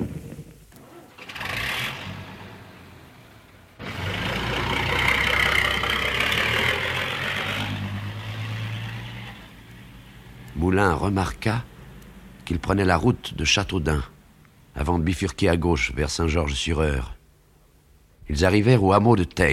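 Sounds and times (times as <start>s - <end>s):
car engine starting and running: 1.3s - 12.6s
speech: 10.8s - 11.7s, 12.5s - 14.1s, 14.8s - 17.2s, 18.3s - 19.5s.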